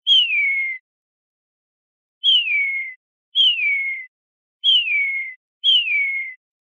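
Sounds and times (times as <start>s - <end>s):
greenfinch single calls: 0.0s - 0.8s, 2.2s - 6.4s.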